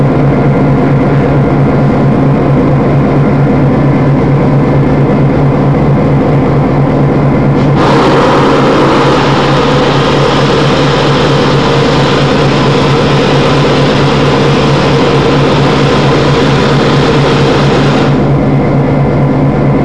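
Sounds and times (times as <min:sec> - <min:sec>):
FP7 locomotive engine idling: 0:00.1 - 0:19.7
steam hissing: 0:07.6 - 0:18.4.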